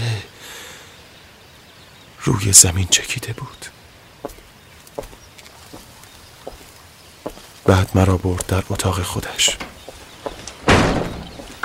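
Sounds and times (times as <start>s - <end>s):
speech: 2.2s - 3.8s, 7.7s - 9.7s
door shut with a solid slam: 10.4s - 11.6s.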